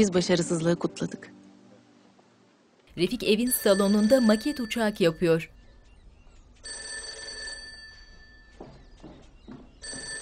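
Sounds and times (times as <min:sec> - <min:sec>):
speech: 0:00.0 - 0:01.4, 0:03.0 - 0:05.6
telephone bell ringing in a home: 0:03.2 - 0:05.5, 0:06.6 - 0:08.6, 0:09.8 - 0:10.2.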